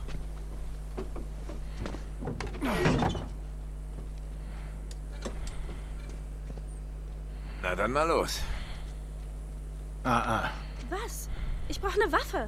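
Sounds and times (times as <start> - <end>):
steady low hum: 0.0 - 12.4
door being pulled shut: 2.2 - 3.4
speech: 7.7 - 8.6, 10.0 - 11.2, 11.8 - 12.4.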